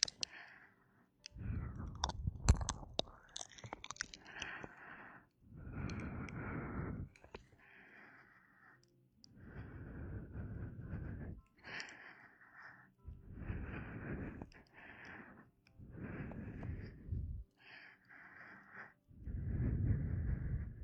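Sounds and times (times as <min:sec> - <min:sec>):
soft clicks and mouth noises: 0:00.0 - 0:00.4, 0:01.2 - 0:04.7
warm breaths right by the ear: 0:00.0 - 0:20.8.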